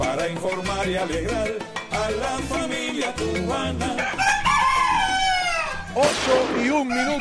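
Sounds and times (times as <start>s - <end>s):
speech: 0.1s - 4.4s, 6.0s - 7.1s
rooster crowing: 3.8s - 6.0s, 6.8s - 7.1s.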